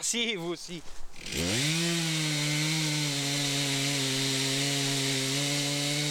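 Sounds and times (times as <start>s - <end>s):
speech: 0.0s - 2.0s
chainsaw engine revving: 1.2s - 6.0s.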